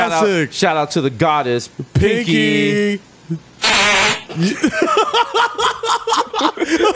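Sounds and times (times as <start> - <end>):
speech: 0.1 - 6.9
loud raspy fart from a played video: 3.6 - 4.3
giggling and snickering laughter: 4.3 - 6.9.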